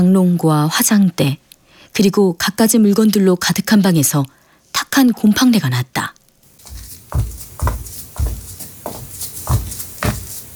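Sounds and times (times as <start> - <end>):
speech: 0.0 - 4.4, 5.0 - 6.2, 7.1 - 7.4
heavy footsteps on a hard floor at walking pace: 6.6 - 10.5.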